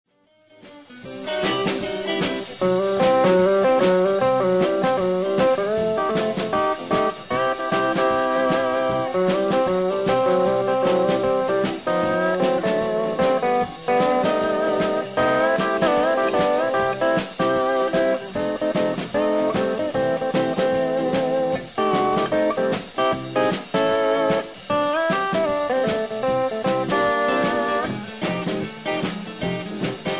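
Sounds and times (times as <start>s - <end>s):
guitar stomp: 0.6s - 30.1s.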